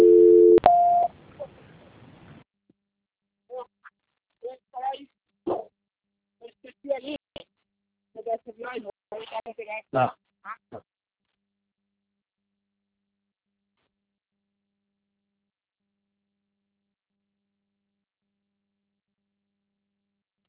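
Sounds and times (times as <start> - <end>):
telephone dial tone during call transfer: 0.0 - 1.1.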